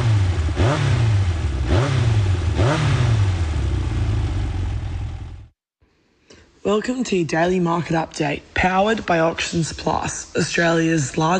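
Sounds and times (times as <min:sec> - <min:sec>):
motorcycle engine revving and idling: 0:00.0 - 0:05.6
speech: 0:06.7 - 0:11.3.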